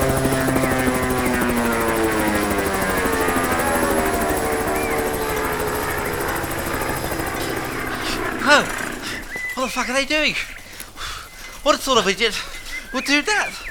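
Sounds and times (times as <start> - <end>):
helicopter flying in low with dense rotor chop: 0.0 - 10.7
speech: 9.8 - 10.6, 11.6 - 13.7.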